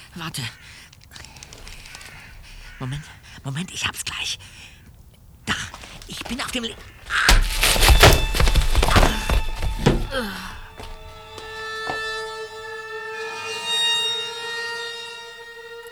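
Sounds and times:
speech: 0.2s - 1.0s, 2.8s - 4.7s, 5.5s - 7.5s, 10.1s - 10.6s
heavy dull blows striking the back of a head: 6.8s - 15.8s
shimmering ringing tone: 7.5s - 15.8s.

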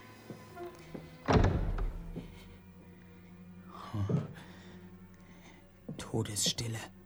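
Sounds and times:
heavy apartment front door creaking open: 0.5s - 2.3s
speech: 6.1s - 7.0s.

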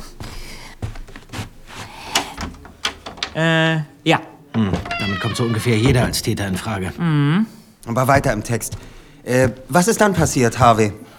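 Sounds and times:
room door latch worked open with a plastic card: 2.1s - 3.5s
speech: 3.4s - 11.0s.

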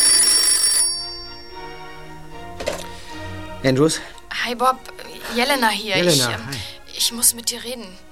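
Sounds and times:
telephone bell ringing: 0.0s - 2.0s
speech: 3.6s - 8.1s.

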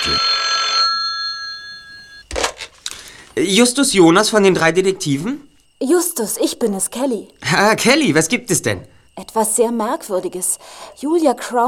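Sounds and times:
telephone ringing with a bright electronic tone: 0.0s - 2.3s
speech: 3.4s - 11.6s.

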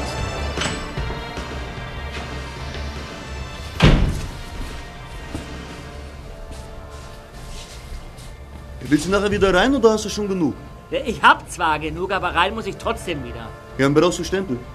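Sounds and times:
heavy door slamming shut: 0.0s - 1.4s, 3.6s - 4.8s
speech: 8.9s - 14.7s.

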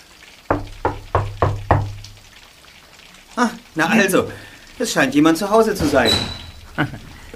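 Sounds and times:
firm knocking on a wooden door: 0.5s - 2.1s
speech: 3.4s - 7.1s.

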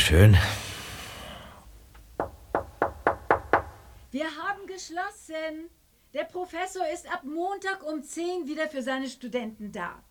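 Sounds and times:
soft breathy hiss: 0.0s - 1.9s, 5.2s - 6.3s
speech: 0.1s - 0.6s, 4.1s - 10.0s
firm knocking on a door: 2.2s - 4.0s.

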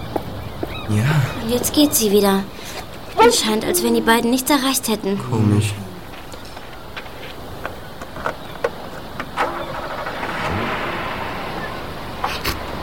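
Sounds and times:
speech: 0.9s - 5.9s
car starting and driving away: 9.2s - 12.8s.

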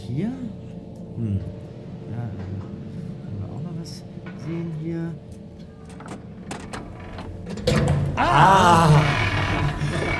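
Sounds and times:
speech: 0.1s - 0.6s, 1.2s - 1.6s
door creaking open on its hinges: 5.6s - 10.1s.

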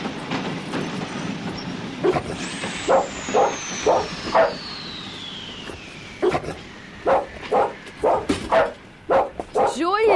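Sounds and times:
long falling hiss: 0.2s - 9.9s
dog barking: 2.0s - 4.6s, 7.1s - 10.1s.

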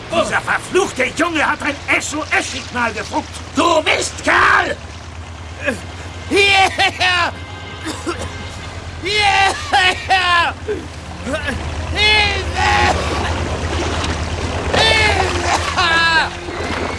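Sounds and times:
police boat engine droning on the water: 0.0s - 16.9s
voices calling out loudly: 0.0s - 16.9s
speech: 0.2s - 4.9s, 5.6s - 8.2s, 9.0s - 13.3s
laughter: 5.6s - 13.7s, 14.7s - 16.5s.

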